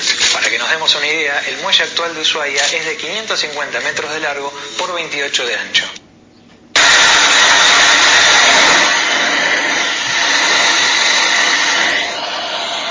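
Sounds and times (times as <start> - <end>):
speech: 0.7 - 6.0
Mirage fighter jet engine roaring in flight: 6.8 - 12.8.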